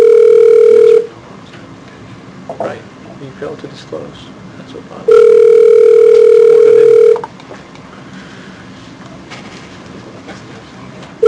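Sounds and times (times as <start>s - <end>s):
unanswered phone call ringback tone: 0.0s - 1.1s, 5.1s - 7.3s
speech: 3.4s - 5.4s.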